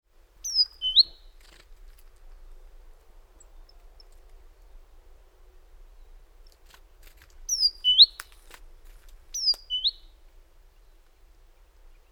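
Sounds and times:
great tit sharp descending chirps: 0.4 - 1.6, 7.5 - 8.2, 9.3 - 10.1.

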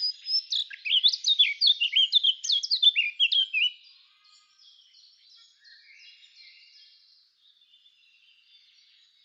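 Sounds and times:
Eurasian blackcap singing, Sylvia atricapilla: 0.0 - 3.8.

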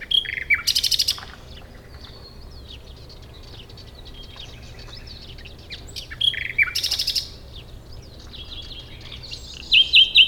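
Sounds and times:
common nightingale Luscinia megarhynchos singing: 0.0 - 10.2.

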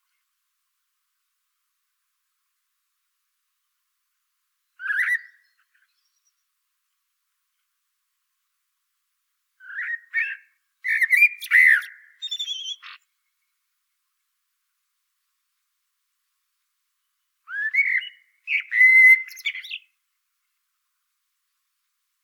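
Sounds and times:
common blackbird singing: 4.8 - 6.4, 9.6 - 13.0, 17.5 - 19.9.

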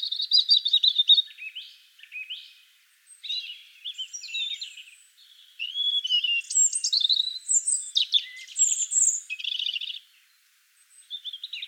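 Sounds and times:
European robin Erithacus rubecula singing short high warbled phrases: 0.0 - 10.1.

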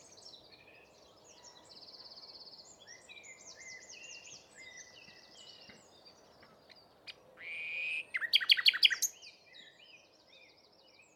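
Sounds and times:
common nightingale Luscinia megarhynchos singing: 7.5 - 9.2.

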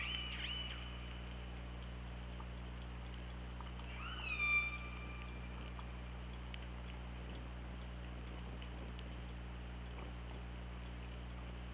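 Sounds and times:
steady low hum: 0.0 - 11.7
underwater noise by hydrophone: 0.0 - 11.7
killer whale calls recorded by hydrophone: 3.9 - 5.6.

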